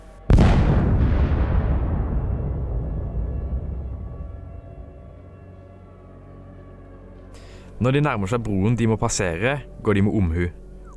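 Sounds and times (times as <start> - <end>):
massive explosion with deep rumbling roar: 0.3 - 5.2
speech: 7.8 - 10.6.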